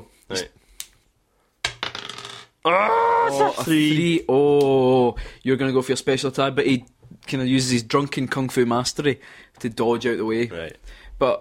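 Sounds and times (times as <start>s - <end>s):
speech: 0.3s - 0.6s, 2.6s - 11.3s
die rolling on a hard table in a tabletop game: 1.6s - 2.6s.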